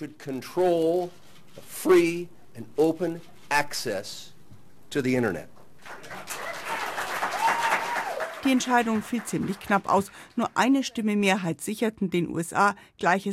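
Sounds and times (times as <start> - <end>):
speech: 0.0 - 4.3, 4.9 - 6.4, 8.4 - 13.3
crowd applauding after vote announcement: 5.8 - 10.7.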